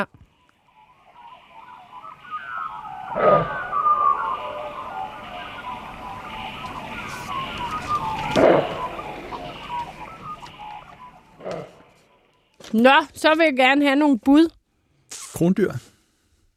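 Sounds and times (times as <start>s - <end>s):
speech: 0.0s - 0.2s, 12.7s - 14.6s, 15.4s - 15.9s
dense chorus of many birds calling, wading birds among them: 0.3s - 12.6s.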